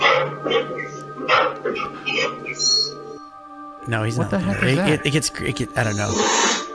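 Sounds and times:
dog barking: 0.0s - 2.4s
speech: 1.6s - 2.9s, 3.9s - 6.6s
laughter: 3.9s - 5.8s.

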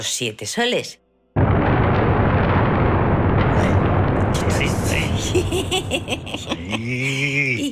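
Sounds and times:
speech: 0.0s - 1.0s, 5.6s - 7.7s
rolling thunder sound effect played from keyboard: 1.4s - 6.7s
laughter: 5.1s - 7.7s.

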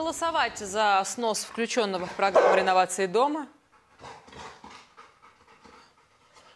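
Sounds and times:
speech: 0.0s - 3.6s
dog panting: 1.2s - 6.5s.

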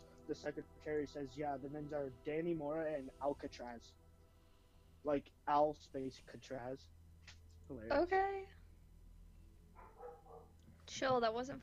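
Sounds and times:
low hum: 0.0s - 11.6s
speech: 0.3s - 4.0s, 5.0s - 7.0s, 7.7s - 8.6s, 10.9s - 11.6s
dog barking: 9.8s - 10.6s.

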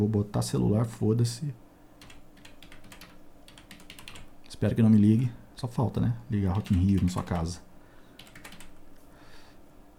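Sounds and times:
speech: 0.0s - 1.6s, 4.6s - 7.7s
typing a postal code on a computer keyboard: 2.0s - 4.3s, 6.6s - 7.5s, 8.2s - 8.8s.

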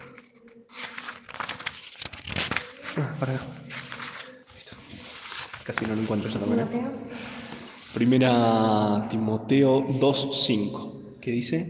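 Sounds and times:
thin book pages being flipped: 0.0s - 6.5s
speech: 3.0s - 3.7s, 5.7s - 7.2s, 8.0s - 11.6s.

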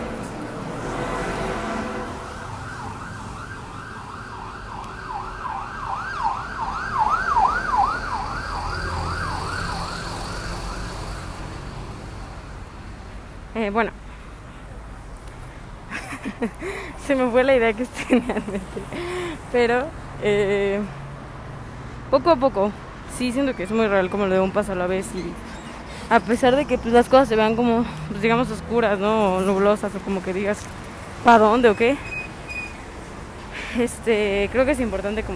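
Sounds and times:
steady street traffic: 0.0s - 35.3s
loud ambulance siren wailing past: 1.4s - 11.4s
speech: 13.6s - 14.0s, 16.4s - 21.0s, 22.1s - 25.4s, 26.1s - 32.1s, 33.8s - 35.3s
laughter: 15.9s - 16.7s, 18.0s - 19.1s.

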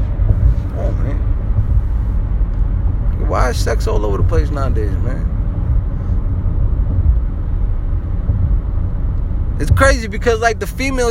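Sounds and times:
car engine rumble heard inside a car: 0.0s - 11.0s
speech: 3.5s - 5.4s, 9.6s - 11.0s.

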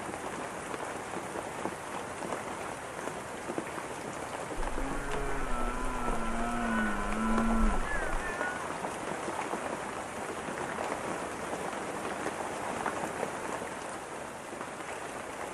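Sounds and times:
dense rain pattering in a forest: 0.0s - 15.5s
faint deep rumble: 4.6s - 8.5s
low wavering call possibly of a deer: 4.6s - 8.6s.

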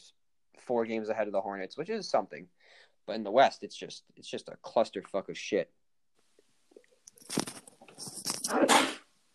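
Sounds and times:
speech: 0.7s - 5.8s
person sneezing: 8.4s - 9.1s.

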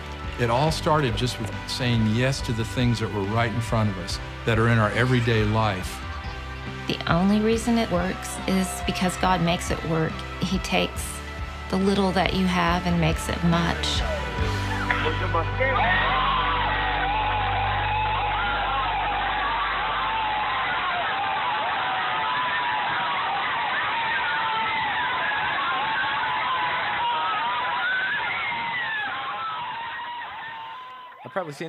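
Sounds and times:
crowd screaming and cheering excitedly: 0.0s - 31.6s
speech: 0.4s - 11.1s, 11.7s - 16.3s, 31.4s - 31.6s.

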